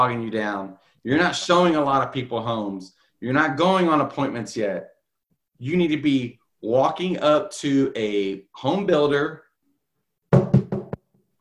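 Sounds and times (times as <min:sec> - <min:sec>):
speech: 0:00.0 - 0:04.9, 0:05.6 - 0:09.4
knocking on a door: 0:10.3 - 0:11.0.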